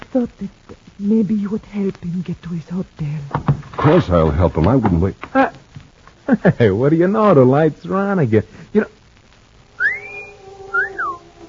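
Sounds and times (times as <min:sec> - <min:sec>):
speech: 0:00.1 - 0:05.6, 0:06.3 - 0:09.0
man wolf whistling in admiration at a woman: 0:09.8 - 0:11.3.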